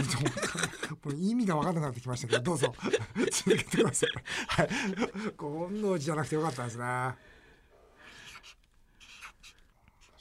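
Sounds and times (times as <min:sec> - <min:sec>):
speech: 0:00.0 - 0:00.4, 0:01.0 - 0:07.3
laughter: 0:00.0 - 0:05.4
pen drawing on a stiff white shikishi card: 0:08.3 - 0:10.1.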